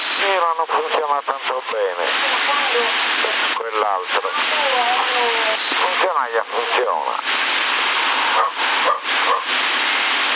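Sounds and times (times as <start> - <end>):
steady hiss of a CB radio transmission on the 27 MHz band: 0.0 - 10.3
speech: 0.6 - 7.8
dog barking in short yelping bursts: 8.4 - 9.5.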